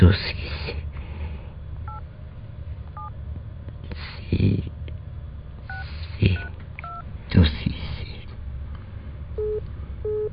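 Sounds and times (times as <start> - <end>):
speech: 0.0 - 0.4, 4.4 - 4.7
constant low hum on the telephone line: 0.0 - 10.3
telephone busy signal beeps: 9.4 - 10.3.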